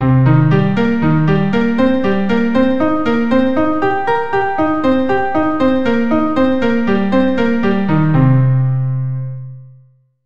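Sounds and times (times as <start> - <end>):
C minor 7 broken chord: 0.1 - 9.4.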